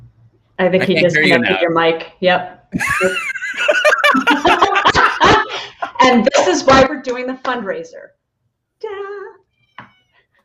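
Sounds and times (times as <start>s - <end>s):
speech: 0.6s - 4.6s, 6.0s - 8.2s
laughter: 0.8s - 1.6s, 2.8s - 6.4s
cat meowing: 9.4s - 10.3s.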